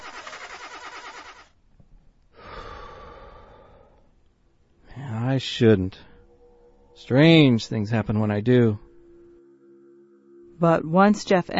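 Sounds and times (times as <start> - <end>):
Neon car engine cranking without starting: 0.0 - 1.6
speech: 5.4 - 6.1, 7.0 - 8.8, 10.6 - 11.5.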